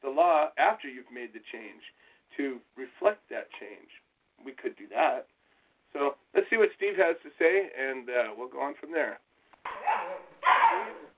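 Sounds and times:
speech: 0.2s - 11.0s
high-pitched puppy barks or yips: 9.6s - 11.1s.

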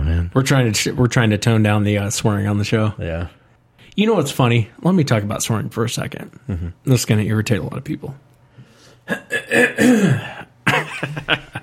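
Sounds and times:
speech: 0.3s - 3.4s, 4.0s - 8.3s, 9.1s - 10.4s, 11.0s - 11.6s
man clearing his throat: 9.0s - 11.3s.

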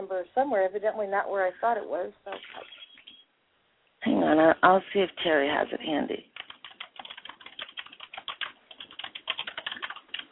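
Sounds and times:
speech: 0.1s - 2.8s, 4.0s - 6.3s
rapid frantic typing on a computer keyboard: 6.3s - 10.2s.

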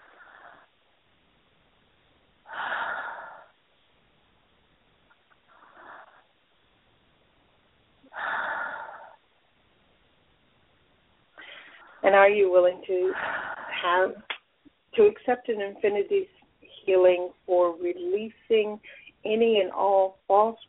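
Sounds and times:
faint hiss: 0.0s - 20.6s
deep breathing: 2.5s - 3.6s, 8.1s - 9.2s, 11.4s - 12.1s, 13.1s - 13.9s
speech: 12.0s - 14.2s, 15.0s - 20.6s.

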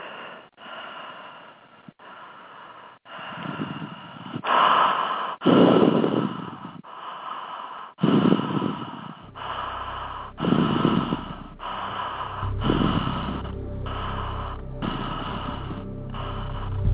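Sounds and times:
steady connected breathing without pauses: 0.0s - 16.9s
low sustained musical drone: 9.2s - 16.9s.

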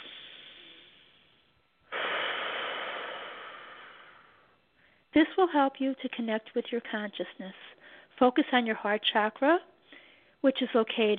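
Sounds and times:
deep breathing in through the nose and out through the mouth: 0.0s - 5.1s, 9.8s - 10.4s
speech: 5.2s - 9.7s, 10.4s - 11.1s.

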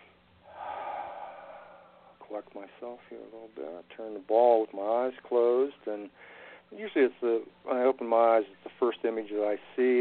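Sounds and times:
single breath drawn in: 0.4s - 2.2s
speech: 2.3s - 9.9s.

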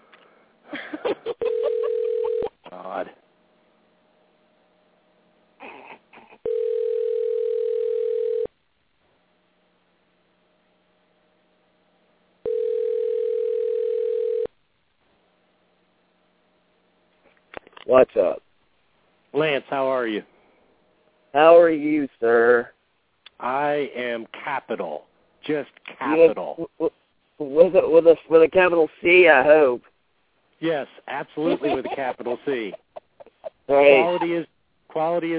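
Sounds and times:
outgoing phone call electronic ringing tone: 1.4s - 2.6s, 6.4s - 8.5s, 12.4s - 14.5s
speech: 2.9s - 3.2s, 17.9s - 18.4s, 19.4s - 20.3s, 21.3s - 22.7s, 23.4s - 29.9s, 30.6s - 32.8s, 33.7s - 35.3s
laughter: 31.4s - 34.5s.

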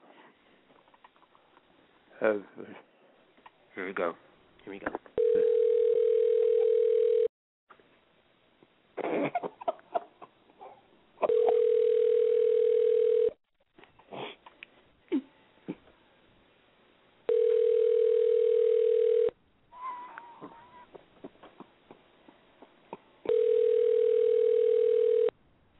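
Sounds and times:
speech: 2.3s - 2.9s, 3.9s - 5.0s
telephone ringback tone for an unanswered call: 5.2s - 7.3s, 11.3s - 13.4s, 17.3s - 19.3s, 23.3s - 25.3s.

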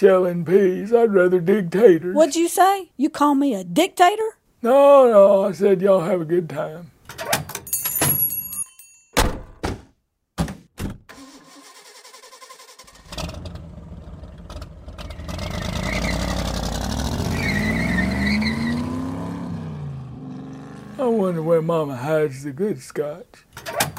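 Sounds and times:
speech: 0.0s - 7.5s, 21.4s - 23.8s
car engine starting and revving as the car pulls away: 12.9s - 21.6s.

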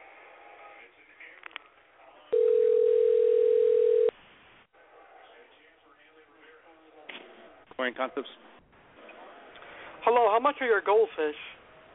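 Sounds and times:
faint low noise: 0.0s - 11.9s
telephone dial tone while dialing a number: 2.4s - 4.1s
speech: 7.8s - 8.5s, 10.0s - 11.5s.

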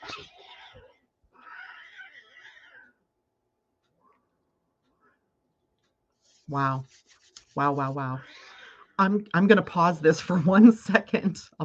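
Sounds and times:
cats fighting outdoors with harsh screeching yowls: 0.0s - 2.9s
speech: 6.5s - 8.4s, 9.0s - 11.6s.

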